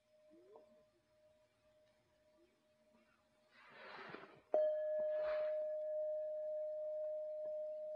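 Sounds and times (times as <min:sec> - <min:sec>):
soft rustles: 0:03.5 - 0:05.8
bell struck sharply and ringing in a pure tone: 0:04.6 - 0:07.9
faint lingering tone: 0:04.6 - 0:07.9.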